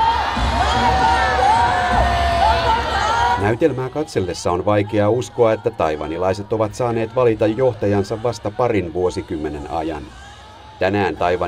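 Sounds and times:
whoops and high yells from a rally crowd: 0.0s - 3.4s
crowd of about 100,000 at a presidential campaign rally in Taiwan cheering and shouting: 0.0s - 11.4s
speech: 3.5s - 11.4s.

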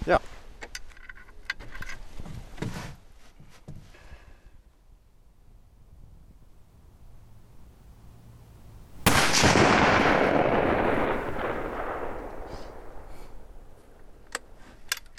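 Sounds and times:
rustling: 0.2s - 4.2s, 12.2s - 15.1s
rifle test shot fired at a target: 9.0s - 14.2s.

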